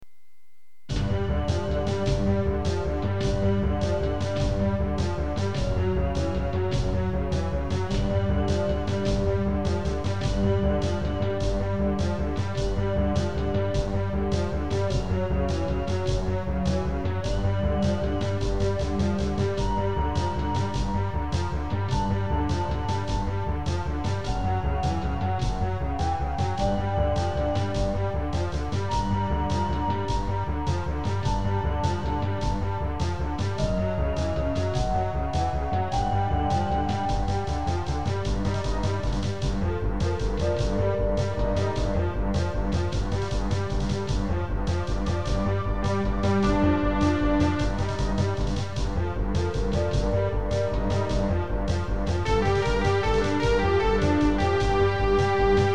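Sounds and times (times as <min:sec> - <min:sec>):
Creative Sound Blaster AWE64 sound card music: 0:00.9 - 0:55.7.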